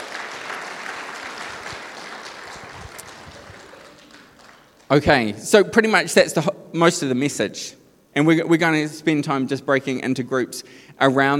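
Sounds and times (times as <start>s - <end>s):
crowd applause with many hands clapping: 0.0s - 5.3s
speech: 4.9s - 11.3s.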